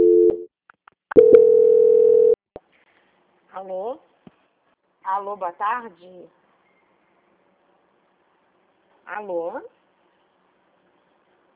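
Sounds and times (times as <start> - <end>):
telephone line tones of an incoming call being transferred: 1.2 - 2.4
speech: 3.6 - 4.1, 5.0 - 6.4, 9.1 - 9.8.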